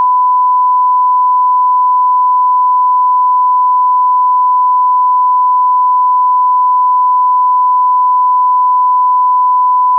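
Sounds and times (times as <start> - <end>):
1000Hz sine tone: 0.0 - 9.9.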